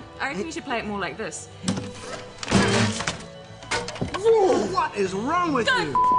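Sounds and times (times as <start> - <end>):
speech: 0.4 - 2.3, 4.2 - 6.1
handmade guitar smashed during a live show: 1.7 - 4.3.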